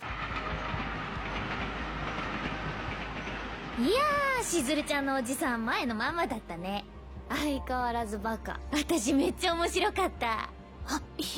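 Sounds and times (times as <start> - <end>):
mine trolley rumbling and clattering on its track: 0.0 - 7.7
speech: 3.8 - 11.3.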